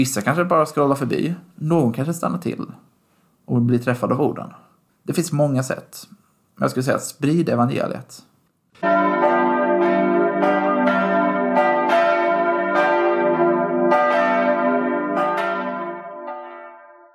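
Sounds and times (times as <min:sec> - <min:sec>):
speech: 0:00.0 - 0:02.9, 0:03.5 - 0:09.2
church bells ringing: 0:08.8 - 0:17.1.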